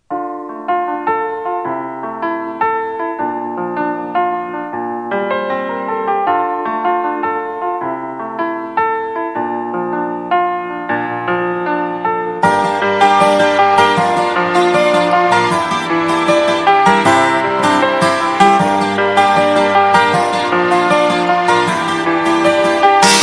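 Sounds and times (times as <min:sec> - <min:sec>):
light piano music: 0:00.0 - 0:23.2.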